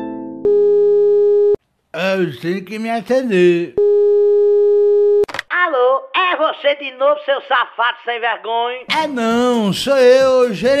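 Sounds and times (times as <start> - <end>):
telephone tone after a caller hangs up: 0.4 - 1.6, 3.8 - 5.3
speech: 1.9 - 3.8, 6.6 - 10.7.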